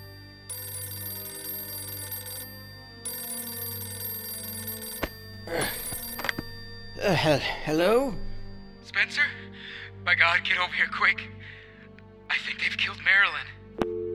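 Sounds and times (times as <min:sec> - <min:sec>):
old-style telephone bell ringing: 0:00.0 - 0:08.8
telephone handset picked up with clattering clicks: 0:03.1 - 0:06.9
speech: 0:05.5 - 0:05.8, 0:07.0 - 0:08.2, 0:08.9 - 0:09.4, 0:10.0 - 0:11.4, 0:12.9 - 0:13.5.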